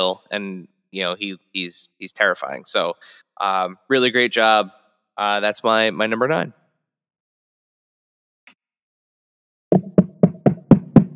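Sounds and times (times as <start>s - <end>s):
speech: 0.0s - 6.6s
knocking on a wooden door: 9.8s - 11.1s.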